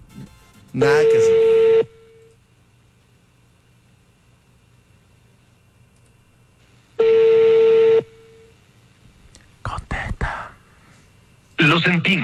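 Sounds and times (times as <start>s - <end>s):
speech: 0.7s - 1.6s
harsh buzzing telephone tone after a rejected call: 0.8s - 2.4s, 7.0s - 8.6s.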